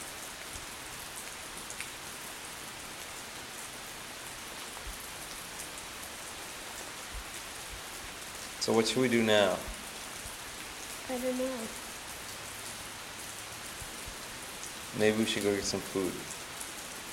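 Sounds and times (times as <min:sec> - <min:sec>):
steady rainfall outside a shelter at Herring Cove in Fundy: 0:00.0 - 0:17.1
speech: 0:08.7 - 0:09.7, 0:11.1 - 0:11.8, 0:15.0 - 0:16.4.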